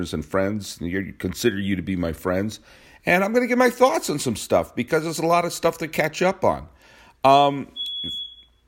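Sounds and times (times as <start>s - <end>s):
speech: 0.0s - 8.2s
smoke alarm low-battery chirp beep: 7.7s - 8.6s.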